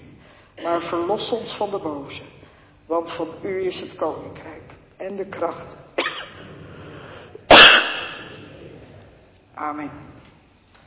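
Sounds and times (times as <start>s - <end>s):
speech: 0.7s - 5.8s, 9.6s - 10.2s
single sharp explosive cough: 6.0s - 6.4s, 7.5s - 8.3s.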